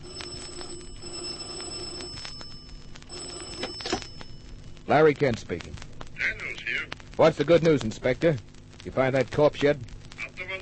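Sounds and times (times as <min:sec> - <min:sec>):
old-fashioned telephone bell ringing: 0:00.0 - 0:04.6
speech: 0:04.9 - 0:05.8, 0:07.2 - 0:09.9.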